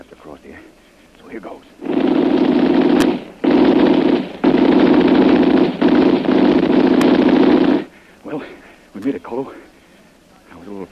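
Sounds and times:
machine gun fire: 1.8s - 8.1s
speech: 9.1s - 9.7s.

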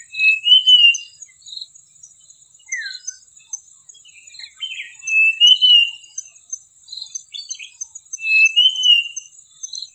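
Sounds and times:
common iora singing whistled phrases: 0.0s - 1.3s, 2.6s - 3.3s, 4.0s - 6.3s, 7.1s - 9.9s.

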